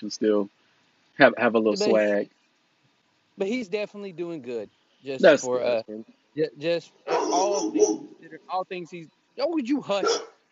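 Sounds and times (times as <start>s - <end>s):
speech: 0.0s - 0.6s, 1.2s - 2.4s, 3.4s - 10.3s
dog barking: 7.0s - 8.2s, 10.0s - 10.4s.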